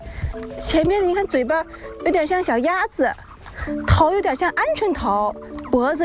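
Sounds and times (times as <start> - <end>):
one to two month old ostrich chicks clucking and peeping: 0.4 - 4.3, 5.4 - 5.9.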